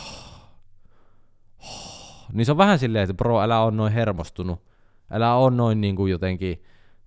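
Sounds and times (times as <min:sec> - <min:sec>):
voice imitating heavy panting: 0:00.0 - 0:00.6, 0:01.6 - 0:02.4
speech: 0:02.3 - 0:06.7.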